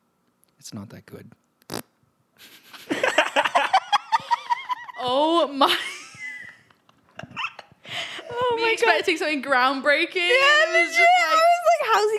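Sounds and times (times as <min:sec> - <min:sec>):
speech: 0:00.6 - 0:01.4, 0:05.0 - 0:05.9, 0:08.7 - 0:12.1
person imitating a fart with their mouth: 0:01.7 - 0:01.9
giggling laughter: 0:02.4 - 0:07.8.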